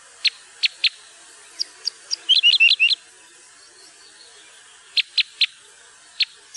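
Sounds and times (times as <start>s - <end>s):
parrot crossbill fast twittering: 0.2s - 3.0s, 4.1s - 6.5s
parrot crossbill chip calls: 0.2s - 3.1s, 4.8s - 6.5s.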